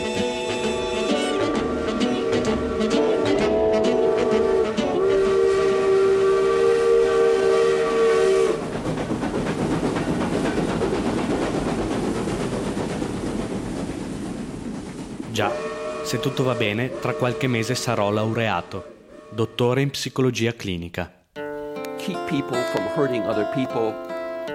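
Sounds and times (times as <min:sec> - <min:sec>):
train horn blaring: 0:00.0 - 0:08.6, 0:15.4 - 0:19.5
train cars clattering and roaring: 0:00.0 - 0:18.0
speech: 0:15.4 - 0:21.2, 0:22.1 - 0:24.1.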